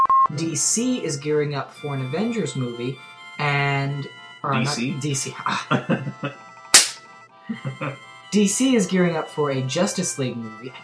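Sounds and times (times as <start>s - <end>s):
speech: 0.3s - 6.5s, 7.5s - 10.8s
laughter: 4.6s - 4.8s, 5.4s - 6.4s, 7.5s - 8.0s
sharp hand clap faking a slap: 6.8s - 7.0s.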